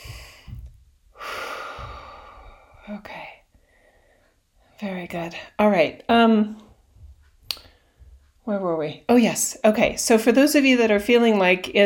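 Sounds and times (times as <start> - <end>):
long deep breath rushing out: 0.0 - 4.8
speech: 2.9 - 3.2, 4.8 - 6.6, 8.5 - 11.8.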